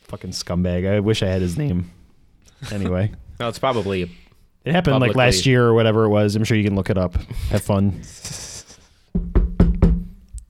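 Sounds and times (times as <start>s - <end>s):
speech: 0.1s - 2.0s, 2.6s - 8.4s
solid knocks on a door: 9.1s - 10.3s.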